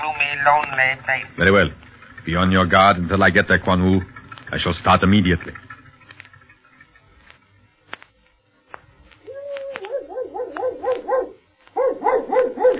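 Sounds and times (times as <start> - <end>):
speech: 0.1 - 5.6
clicks and taps: 8.7 - 11.8
dog whimpering and barking: 9.4 - 12.7.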